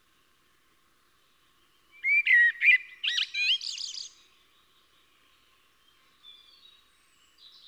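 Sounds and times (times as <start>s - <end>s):
Eurasian blackbird singing: 1.9s - 7.6s.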